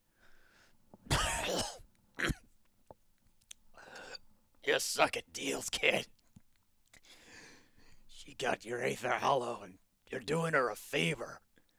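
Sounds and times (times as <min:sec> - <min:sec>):
harsh raspy cough: 0:01.1 - 0:02.5
speech: 0:04.7 - 0:06.2, 0:08.4 - 0:11.5.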